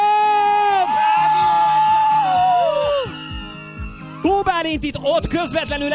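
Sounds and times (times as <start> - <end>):
audience screaming at a radio station's birthday festival: 0.0 - 5.9
speech: 4.6 - 5.9.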